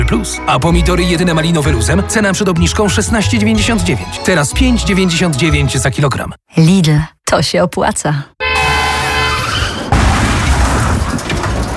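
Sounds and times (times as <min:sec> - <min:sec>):
speech: 0:00.1 - 0:08.4
car tires screeching in a long tonal skid: 0:08.6 - 0:10.3
loud car crash impact: 0:09.4 - 0:11.7
crunching clattering debris rattling: 0:09.7 - 0:11.7.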